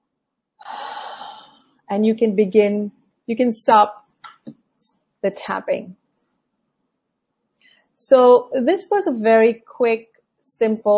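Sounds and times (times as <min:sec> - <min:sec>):
deep inhaled breath during a calming tapping exercise: 0:00.6 - 0:01.6
speech: 0:01.9 - 0:04.6, 0:05.2 - 0:06.0, 0:08.0 - 0:10.9.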